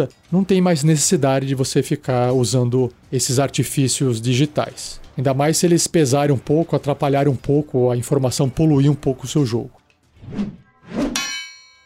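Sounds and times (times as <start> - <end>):
speech: 0.0 - 10.6
soft whooshing sword swipes: 10.2 - 11.2
bright metallic sword clang sound effect: 11.0 - 11.8.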